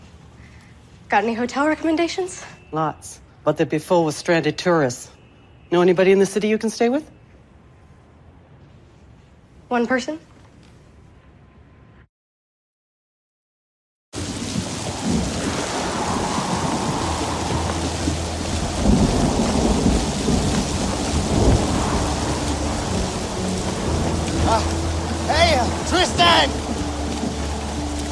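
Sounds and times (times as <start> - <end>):
speech: 1.1 - 7.2, 9.7 - 10.3
deep rolling thunder in a city: 14.2 - 28.0
heavy rain in a city thunderstorm: 14.2 - 28.0.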